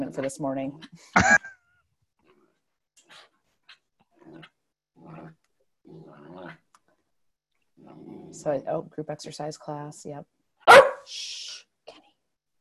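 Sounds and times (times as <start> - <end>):
speech: 0.1 - 1.5, 8.3 - 10.4, 11.1 - 11.3
dog growling: 4.1 - 6.7, 7.8 - 8.5
dog barking: 10.6 - 11.1.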